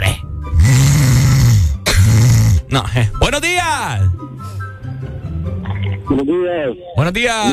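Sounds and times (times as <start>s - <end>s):
man loudly imitating snoring with rattling, throaty breaths: 0.5s - 2.7s
speech: 2.7s - 4.5s, 6.1s - 7.5s.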